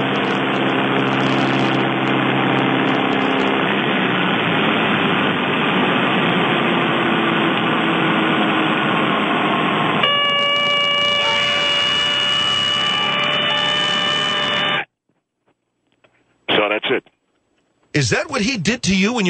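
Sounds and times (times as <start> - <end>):
airplane engine roar in a simulated dive: 0.0 - 14.9
speech: 18.0 - 19.2.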